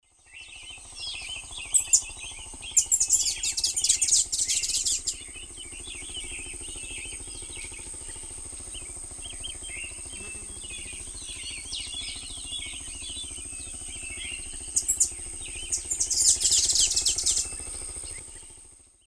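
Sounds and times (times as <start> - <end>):
Thlypopsis sordida song: 0.0 - 19.0.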